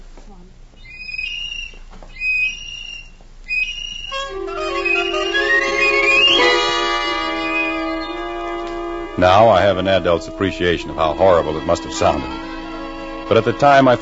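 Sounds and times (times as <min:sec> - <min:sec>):
tin whistle blown in shrill toots and sustained blast: 0:01.0 - 0:14.0
speech: 0:09.2 - 0:12.5, 0:13.3 - 0:14.0.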